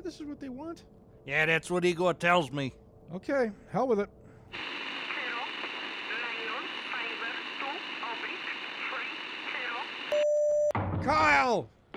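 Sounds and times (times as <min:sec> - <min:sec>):
speech: 0:00.1 - 0:04.8, 0:11.0 - 0:11.9
radio static: 0:04.6 - 0:10.2
rapid warbling chirping coded radio signal bursts: 0:04.6 - 0:10.2.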